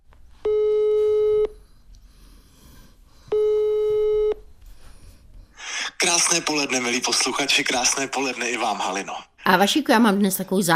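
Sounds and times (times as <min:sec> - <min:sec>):
telephone ringback tone while a call is being placed: 0:00.4 - 0:01.5, 0:03.3 - 0:04.4
speech: 0:06.3 - 0:10.7.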